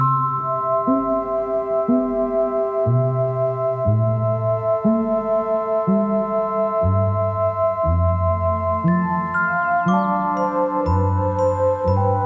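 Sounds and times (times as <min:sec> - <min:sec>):
synthesizer playing a baroque-style classical piece: 0:00.0 - 0:12.2.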